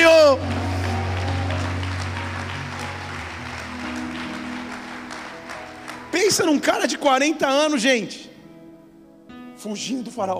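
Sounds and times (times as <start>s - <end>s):
congregation cheering: 0.0s - 4.8s
congregation applauding: 0.0s - 7.0s
sustained low keyboard chord: 0.0s - 10.3s
speech: 6.3s - 8.3s, 9.6s - 10.3s.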